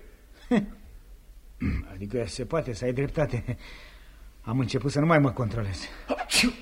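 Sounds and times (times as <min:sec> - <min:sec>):
speech: 0:00.5 - 0:00.8, 0:01.6 - 0:06.6
short sharp sneeze with intake of breath: 0:06.1 - 0:06.6.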